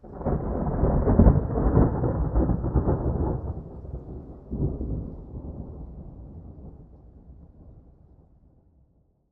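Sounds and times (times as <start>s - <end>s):
thunder peal: 0.0s - 6.9s.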